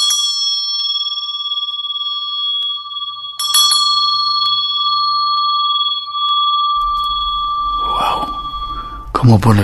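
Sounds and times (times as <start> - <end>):
bell ringing: 0.0 - 9.6
low rumbling: 6.4 - 9.6
speech: 9.2 - 9.6.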